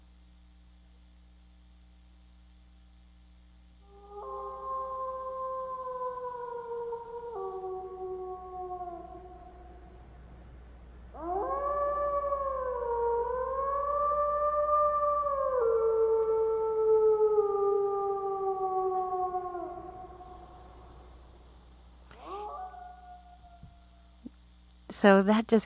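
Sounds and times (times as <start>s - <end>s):
wolf howling: 3.8s - 10.4s, 11.1s - 21.5s, 22.1s - 24.3s
speech: 25.0s - 25.6s.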